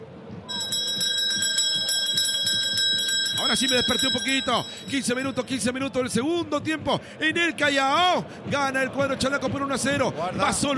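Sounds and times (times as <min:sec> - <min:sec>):
bright metallic bell ringing rapidly: 0:00.5 - 0:06.2
speech: 0:03.5 - 0:10.7.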